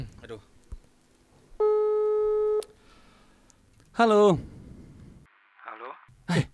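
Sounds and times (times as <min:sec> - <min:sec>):
speech: 0:00.3 - 0:00.5, 0:04.0 - 0:04.5
phone outgoing call tone for a call using mobile data quota: 0:01.6 - 0:02.7.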